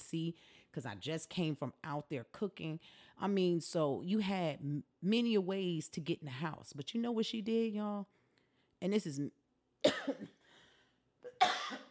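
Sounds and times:
speech: 0:00.1 - 0:08.2, 0:08.8 - 0:10.4
sharp cough trailing into a raspy breath: 0:09.8 - 0:10.5, 0:11.3 - 0:11.8.

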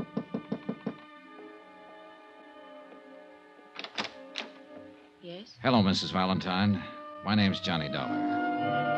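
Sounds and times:
quick sharp knocking on a door: 0:00.0 - 0:01.0
speech: 0:05.3 - 0:08.8.

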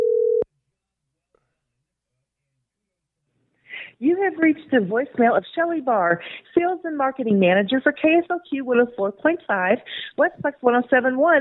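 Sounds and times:
telephone ringback tone on an outgoing call: 0:00.0 - 0:00.4
speech: 0:04.0 - 0:11.3.

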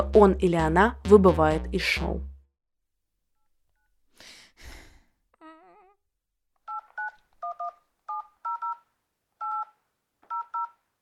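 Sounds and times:
speech: 0:00.0 - 0:02.3
telephone keypad tones as someone dials: 0:06.7 - 0:08.8, 0:09.4 - 0:09.7, 0:10.3 - 0:10.8.

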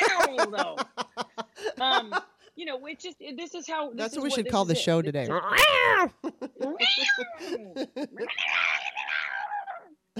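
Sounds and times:
laughter: 0:00.0 - 0:02.3, 0:06.0 - 0:08.6
speech: 0:00.4 - 0:00.9, 0:02.8 - 0:08.8
person imitating cats screaming at each other: 0:05.3 - 0:06.2, 0:06.8 - 0:07.4, 0:08.2 - 0:09.9.

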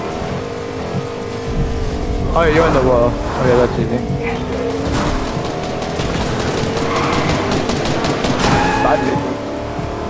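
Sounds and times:
faint whine: 0:00.0 - 0:05.4
video game car engine droning: 0:00.0 - 0:10.0
speech: 0:02.4 - 0:04.6, 0:08.9 - 0:09.5.

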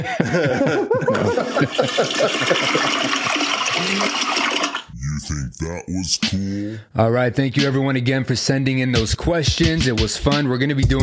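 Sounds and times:
people laughing and chuckling: 0:00.0 - 0:04.1
speech: 0:00.0 - 0:04.6, 0:05.3 - 0:11.0
toilet flush sound effect: 0:01.1 - 0:04.9.

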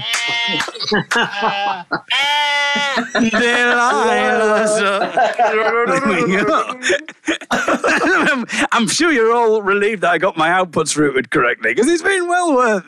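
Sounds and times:
sheep bleats following a song melody: 0:00.0 - 0:03.1
laughter: 0:00.0 - 0:09.0
speech: 0:00.5 - 0:02.2, 0:02.8 - 0:12.8.

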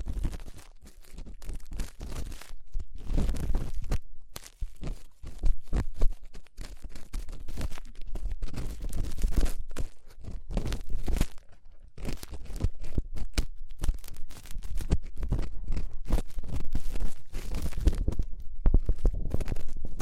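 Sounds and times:
crackly ear cleaning with scratching and rubbing strokes: 0:00.0 - 0:20.0.

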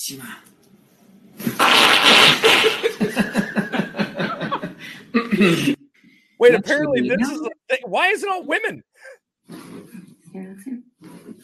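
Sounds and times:
speech: 0:00.0 - 0:00.6, 0:05.4 - 0:05.8, 0:06.4 - 0:09.7
fart noise from a chiropractor video: 0:01.4 - 0:03.0
laughter: 0:02.2 - 0:05.8, 0:06.4 - 0:08.8.

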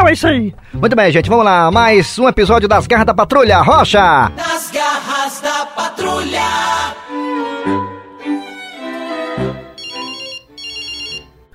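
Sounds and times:
speech: 0:00.1 - 0:07.0
mobile phone ringtone playing a melodic electronic tune: 0:09.7 - 0:11.4.

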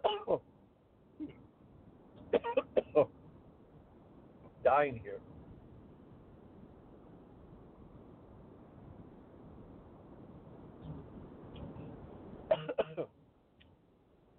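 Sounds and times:
person coughing from a tickle in the throat: 0:00.0 - 0:00.4, 0:02.3 - 0:03.1, 0:12.5 - 0:13.1
steady rushing wind-like noise: 0:01.6 - 0:12.6
speech: 0:04.7 - 0:05.3.

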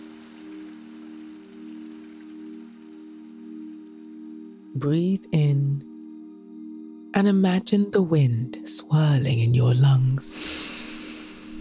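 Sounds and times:
steady rain pattering: 0:00.0 - 0:05.3
speech: 0:04.8 - 0:05.9, 0:07.2 - 0:10.7.

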